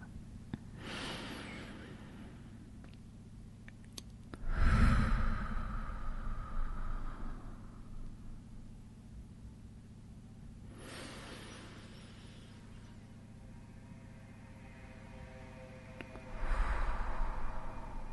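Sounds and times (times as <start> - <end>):
slow deep breathing during a guided relaxation exercise: 0.7 - 2.8, 4.4 - 9.0, 10.6 - 13.2, 16.1 - 18.1.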